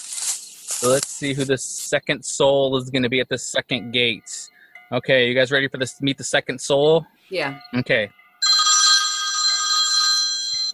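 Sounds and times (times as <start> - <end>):
speech: 0.8 - 8.2
telephone ringing with an electronic bell tone: 8.2 - 10.7.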